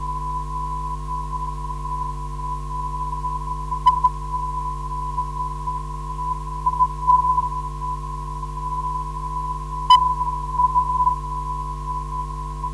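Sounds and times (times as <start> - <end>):
NDB radio beacon signal at 364 kHz: 0.0 - 12.7.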